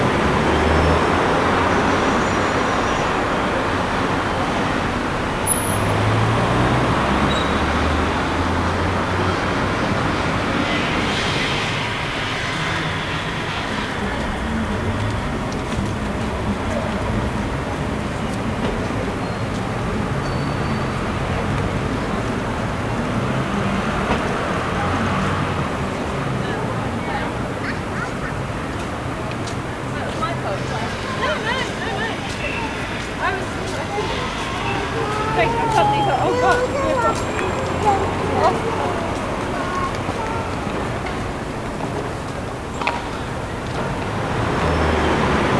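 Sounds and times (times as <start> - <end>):
busy city ambience: 0.0 - 45.5.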